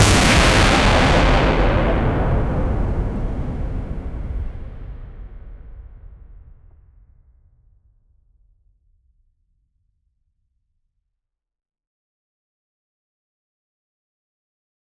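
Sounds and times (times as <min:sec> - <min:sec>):
blast explosion: 0:00.0 - 0:06.3.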